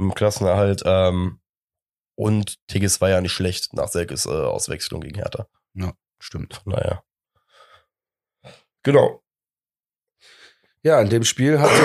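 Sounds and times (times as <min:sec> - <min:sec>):
speech: 0:00.0 - 0:01.4, 0:02.2 - 0:07.1, 0:08.4 - 0:09.2, 0:10.2 - 0:11.8
soft breathy noises: 0:07.4 - 0:08.6
person coughing: 0:11.6 - 0:11.8.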